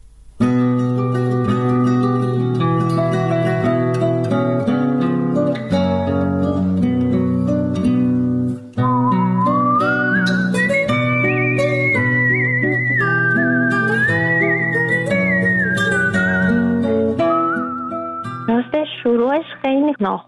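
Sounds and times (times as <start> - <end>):
full instrumental accompaniment: 0.0 - 19.8
smooth melodic whistled tune: 8.8 - 18.9.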